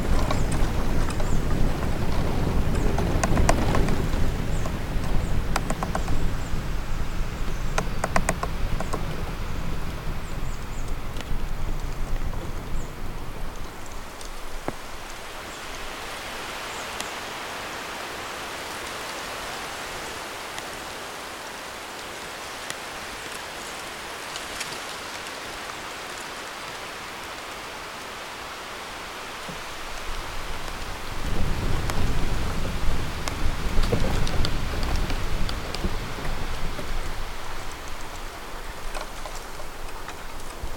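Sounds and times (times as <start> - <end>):
low gusty wind rumbles: 0.0 - 15.1, 29.9 - 40.7
wind rustling leaves in a bamboo forest: 0.0 - 40.7.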